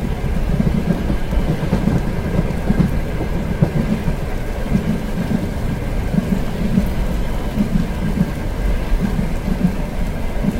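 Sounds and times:
rain drumming on a car roof heard from inside: 0.0s - 10.5s.

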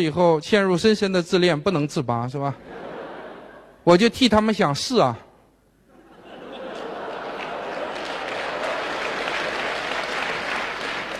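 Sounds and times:
speech: 0.0s - 2.8s, 3.9s - 5.2s
laughter: 2.6s - 3.8s, 5.9s - 9.9s
audience applauding: 6.7s - 11.1s.

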